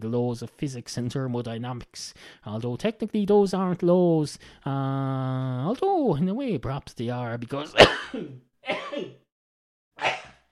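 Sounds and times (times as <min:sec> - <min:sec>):
speech: 0:00.0 - 0:09.2
human sneeze: 0:07.8 - 0:09.2, 0:10.0 - 0:10.5.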